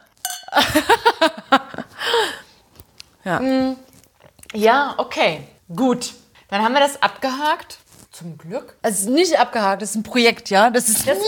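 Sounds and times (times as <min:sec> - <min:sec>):
glasses clinking in a toast: 0:00.1 - 0:00.8
speech: 0:00.6 - 0:01.3, 0:03.3 - 0:03.8, 0:04.5 - 0:11.2.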